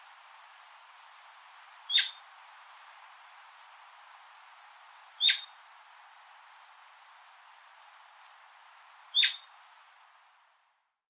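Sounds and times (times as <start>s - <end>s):
Atlantic royal flycatcher Onychorhynchus swainsoni calls: 1.9s - 2.6s, 5.2s - 5.6s, 9.1s - 9.5s.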